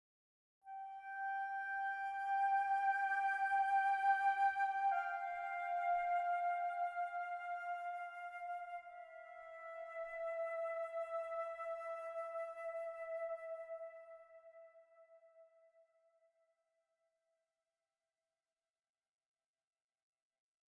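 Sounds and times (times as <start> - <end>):
flute playing: 0.7 - 15.5.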